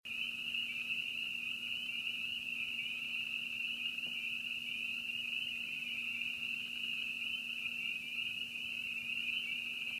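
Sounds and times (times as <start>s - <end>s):
cricket trilling: 0.1s - 9.9s
low constant hum: 0.1s - 9.9s.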